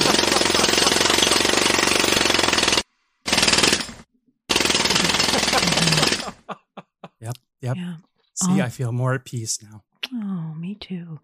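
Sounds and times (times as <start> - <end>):
laughter: 0.0 - 1.0, 4.9 - 7.4
jackhammer pounding at a construction site: 0.0 - 6.4
speech: 7.2 - 9.9, 10.7 - 11.2.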